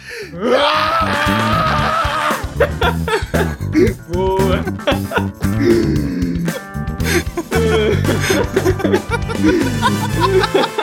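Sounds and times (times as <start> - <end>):
breathy laughter and gasps close to the mic: 0.0 - 1.6, 2.6 - 4.0, 4.6 - 10.6
speech: 0.2 - 1.6, 8.9 - 10.8
several voices screaming together: 0.3 - 2.5.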